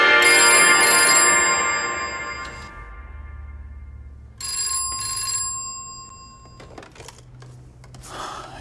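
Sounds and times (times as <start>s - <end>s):
telephone ringing with bright electronic ring tone: 0.2s - 2.9s, 4.3s - 7.2s.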